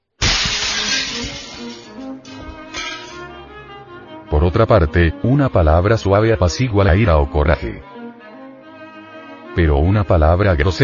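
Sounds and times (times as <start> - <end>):
window glass shards tinkling and clattering: 0.2 - 3.3
window glass shattering from a cannon boom: 0.2 - 3.4
speech: 4.5 - 7.9, 9.6 - 10.8.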